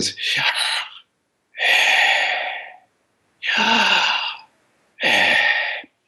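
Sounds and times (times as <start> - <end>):
speech: 0.0 - 0.6
person breathing in and out audibly: 1.6 - 6.0.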